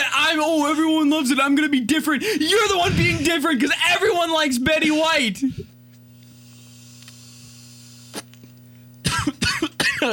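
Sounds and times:
low electrical hum: 0:00.0 - 0:10.1
speech: 0:00.3 - 0:05.7
person coughing: 0:09.0 - 0:10.1.

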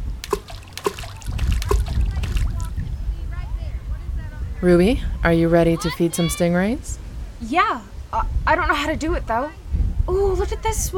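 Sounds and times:
water splashing beside a small boat as people swim: 0:00.2 - 0:02.9
speech: 0:04.6 - 0:10.9.

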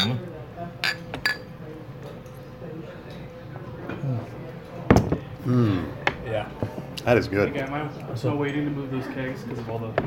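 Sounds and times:
glasses clinking in a toast: 0:00.0 - 0:00.2, 0:00.8 - 0:01.5
murmur of voices: 0:00.0 - 0:10.0
room noise: 0:00.0 - 0:10.0
speech: 0:05.5 - 0:05.8, 0:06.4 - 0:10.0.

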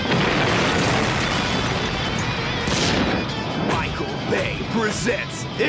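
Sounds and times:
explosion sound effect roaring with crackling rumble: 0:00.1 - 0:04.0
speech: 0:05.0 - 0:05.6.

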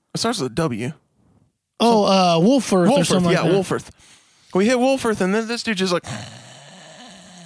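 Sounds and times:
speech: 0:00.2 - 0:01.0, 0:01.8 - 0:06.4
person imitating a man's snore with their voice during a car trip: 0:06.0 - 0:07.4.

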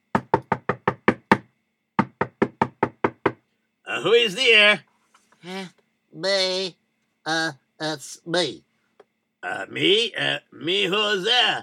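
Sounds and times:
knocking on a door: 0:00.1 - 0:03.5
speech: 0:04.0 - 0:08.7, 0:09.4 - 0:11.6.

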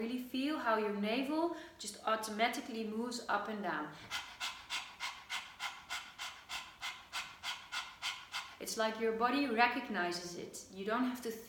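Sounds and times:
speech: 0:00.1 - 0:04.3, 0:08.6 - 0:11.4
person panting rapidly with tongue out like a puppy: 0:04.0 - 0:08.7.

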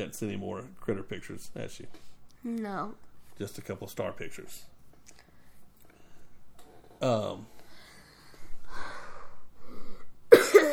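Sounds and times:
speech: 0:00.0 - 0:05.2, 0:07.0 - 0:07.5
person coughing harshly: 0:10.3 - 0:10.7.

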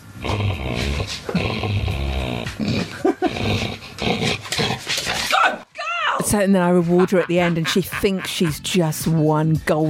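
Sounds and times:
female dog growling playfully while playing tug with a ball: 0:00.2 - 0:05.3
speech: 0:06.3 - 0:09.8
laughter: 0:06.7 - 0:08.7.

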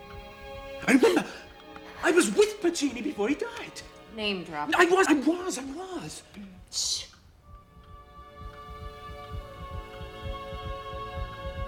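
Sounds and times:
speech: 0:00.8 - 0:01.4, 0:02.0 - 0:07.1
sustained droning hum: 0:07.4 - 0:11.6
doubled heartbeat from two hearts: 0:07.5 - 0:11.6.

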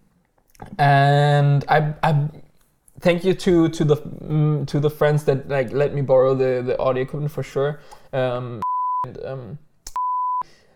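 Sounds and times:
speech: 0:00.8 - 0:02.3, 0:03.0 - 0:09.7
high-pitched censor bleep: 0:08.6 - 0:09.1, 0:10.0 - 0:10.4.

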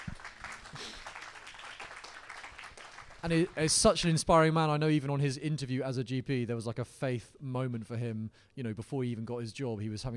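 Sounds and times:
crowd clapping: 0:00.0 - 0:03.9
speech: 0:03.2 - 0:10.1.

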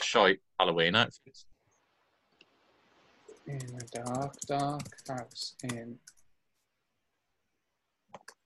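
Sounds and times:
speech: 0:00.1 - 0:01.5, 0:03.5 - 0:06.2
typing a search on a computer keyboard: 0:03.4 - 0:06.2.

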